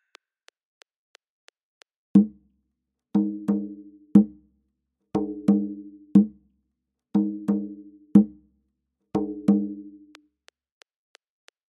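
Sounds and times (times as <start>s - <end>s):
African djabara rhythm at 90 bpm: 2.2s - 2.4s, 3.2s - 4.5s, 5.2s - 6.4s, 7.2s - 8.5s, 9.2s - 10.2s.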